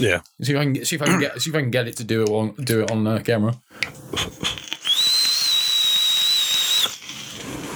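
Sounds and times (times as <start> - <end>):
speech: 0.0 - 4.6
breathy hiss of rushing air: 4.5 - 7.7
loud piercing high-pitched whistle from air drawn through airflow holes over a small coil: 4.8 - 7.1.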